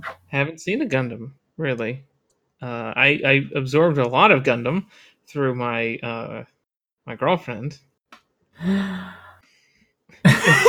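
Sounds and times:
speech: 0.3 - 6.5, 7.1 - 7.9, 8.6 - 9.2, 10.2 - 10.6
person gasping: 8.6 - 9.6.

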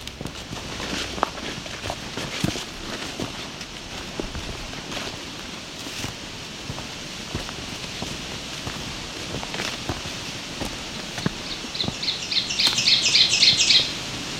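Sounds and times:
rustling on a trail: 0.0 - 14.0
soft crunching footsteps on a trail: 0.0 - 14.2
ovenbird warbler singing teacher-teacher song: 11.2 - 14.1.

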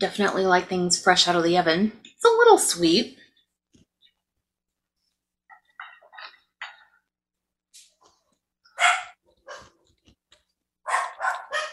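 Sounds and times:
speech: 0.0 - 3.2
dogs barking: 8.7 - 9.8, 10.8 - 11.7.

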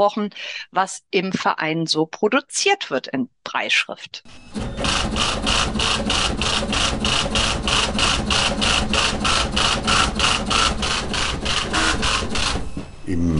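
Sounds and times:
speech: 0.0 - 7.4
constant braille printer machine whir: 4.3 - 13.1
high-performance braille printer embossing head hammering: 4.6 - 12.8.

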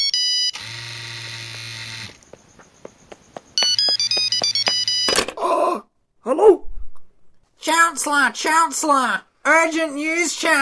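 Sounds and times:
electronic telephone ringing: 0.0 - 2.2, 3.6 - 5.3
speech: 7.9 - 10.6.

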